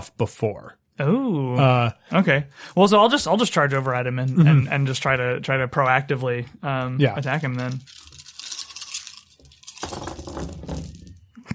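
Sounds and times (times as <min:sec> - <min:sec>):
speech: 0:00.0 - 0:08.1
handful of dice rolling on a hard tabletop: 0:07.4 - 0:11.2.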